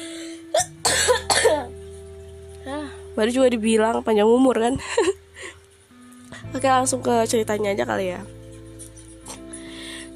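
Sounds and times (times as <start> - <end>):
person with a cough and cold coughing: 0.5 - 1.7
speech: 3.2 - 5.2, 6.6 - 8.4.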